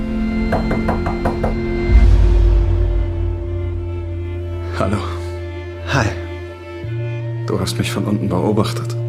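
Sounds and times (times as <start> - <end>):
deeper rumbling swell: 0.1 - 7.3
speech: 0.5 - 1.0, 7.6 - 9.0
knocking on an apartment door in a London high-rise: 0.5 - 1.9.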